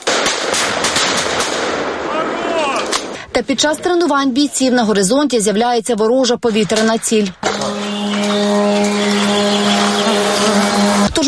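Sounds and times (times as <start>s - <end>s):
gunshots during close-quarters training: 0.0s - 3.3s, 6.6s - 10.8s
speech: 3.4s - 7.6s.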